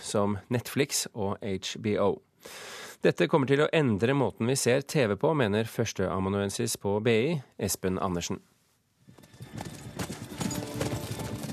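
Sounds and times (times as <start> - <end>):
speech: 0.1 - 8.5
horse hooves clip-clopping: 9.1 - 11.5.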